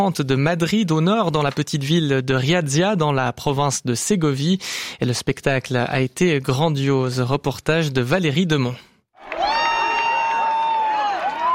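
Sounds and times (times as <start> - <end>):
speech: 0.0 - 8.9
crowd cheering during a total solar eclipse on a farm field in Spain: 9.2 - 11.5.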